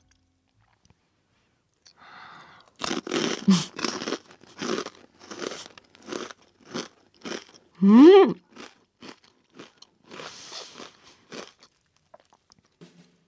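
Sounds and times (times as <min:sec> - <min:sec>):
crunching and chewing a crisp salty fried snack: 0:01.8 - 0:12.8
speech: 0:03.5 - 0:03.8, 0:07.8 - 0:08.4
eater murmuring: 0:07.8 - 0:08.4.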